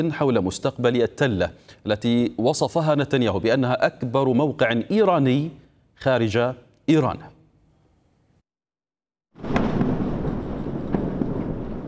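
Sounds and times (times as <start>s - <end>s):
speech: 0.0s - 7.3s
massive explosion boom: 9.4s - 11.8s.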